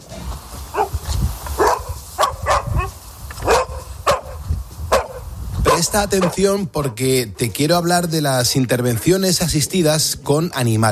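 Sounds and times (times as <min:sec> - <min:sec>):
dog barking: 0:00.7 - 0:01.0, 0:01.6 - 0:06.4
speech: 0:06.0 - 0:10.9.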